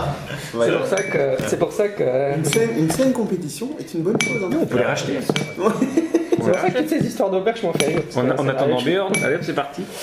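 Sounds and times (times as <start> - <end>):
steady conversation: 0.0 - 10.0
speech: 0.4 - 10.0
dishes and cutlery clinking in a newly opened inn: 0.8 - 9.7
laughter: 5.6 - 7.1.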